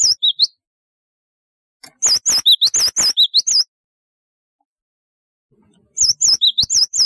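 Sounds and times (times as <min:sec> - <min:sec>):
Java sparrow whistled song with clicking: 0:00.0 - 0:00.6, 0:01.8 - 0:03.7, 0:05.7 - 0:07.0.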